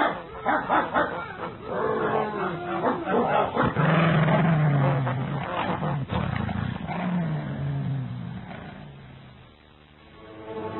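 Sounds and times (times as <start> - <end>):
dogs on a farm barking, yipping and whimpering: 0.0 - 4.0
dogs growling and snarling: 0.0 - 9.1.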